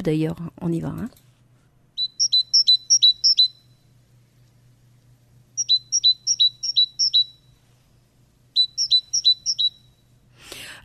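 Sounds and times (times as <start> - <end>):
speech: 0.0 - 1.2
faint low hum: 0.0 - 10.8
great tit singing two-note see-saw phrase: 2.0 - 3.8, 5.6 - 7.5, 8.6 - 10.0.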